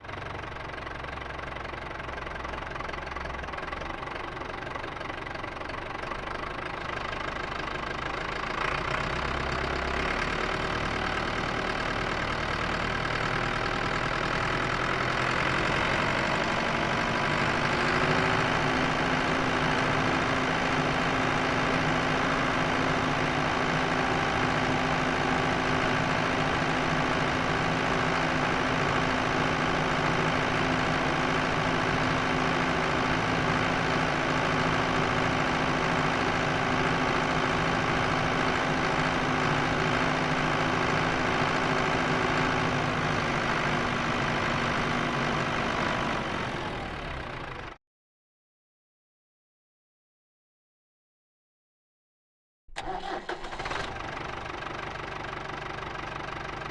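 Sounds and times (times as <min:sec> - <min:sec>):
Ford tractor engine at medium drive: 0:00.0 - 0:47.8, 0:52.8 - 0:56.6.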